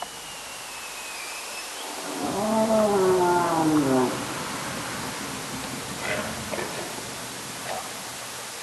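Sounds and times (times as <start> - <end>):
steady hiss of water noise: 0.0 - 8.6
underwater whale calls recorded by hydrophone: 2.0 - 4.5.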